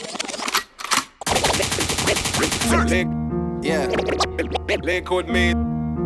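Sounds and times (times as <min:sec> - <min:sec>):
rapid-fire gunfire: 0:01.2 - 0:03.0
sharp gunshot blasts: 0:01.2 - 0:03.0
speech: 0:02.8 - 0:05.8.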